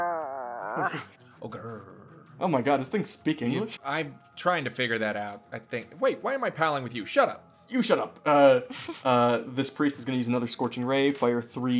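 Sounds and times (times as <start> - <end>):
person imitating a wolf's growl: 0.0 - 2.4
speech: 0.8 - 11.7.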